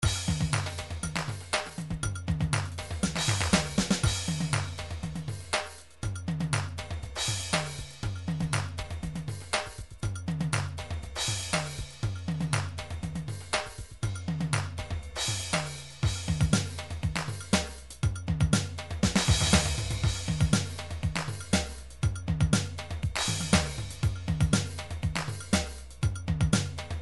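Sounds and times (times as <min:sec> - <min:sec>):
new age MIDI drum groove loops: 0:00.0 - 0:27.0.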